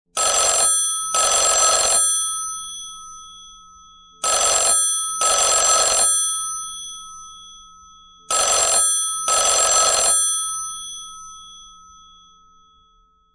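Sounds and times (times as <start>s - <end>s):
tring tring phone ringtone: 0.2s - 3.0s, 4.2s - 7.2s, 8.3s - 11.5s.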